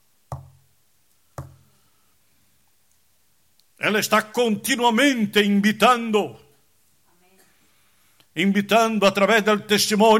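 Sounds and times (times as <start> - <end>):
knuckles knocking on a wooden door: 0.3 - 0.6
speech: 3.8 - 6.4, 8.4 - 10.1.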